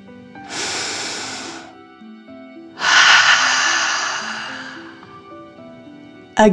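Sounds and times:
soft music humming faintly: 0:00.0 - 0:06.5
breathy inhale: 0:00.4 - 0:01.8, 0:02.8 - 0:05.4
forceful exhale through the mouth: 0:00.5 - 0:01.8, 0:02.8 - 0:05.2.

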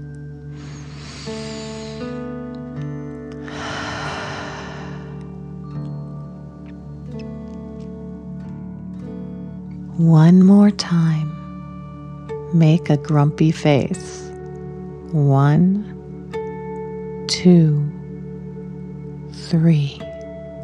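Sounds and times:
deep breath in and out during a guided relaxation exercise: 0:00.5 - 0:02.7, 0:03.3 - 0:05.6
speech: 0:10.0 - 0:11.4, 0:12.5 - 0:14.2, 0:15.1 - 0:16.0, 0:17.3 - 0:17.9, 0:19.5 - 0:20.0.

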